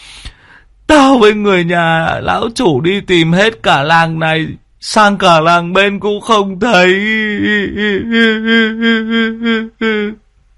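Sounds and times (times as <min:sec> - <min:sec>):
speech: 0:00.9 - 0:10.2
person bursting into tears after a buffalo goes missing: 0:06.8 - 0:10.2.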